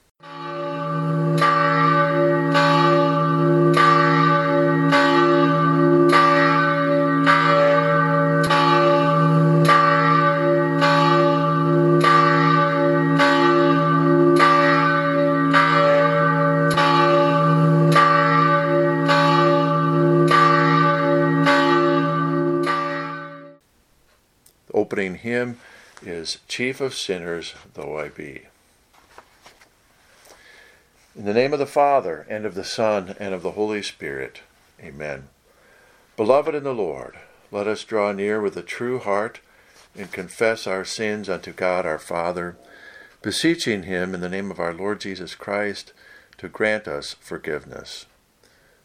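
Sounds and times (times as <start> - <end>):
church bell ringing: 0.2 - 23.6
speech: 26.2 - 28.6, 31.2 - 35.3, 36.2 - 39.4, 40.0 - 48.1.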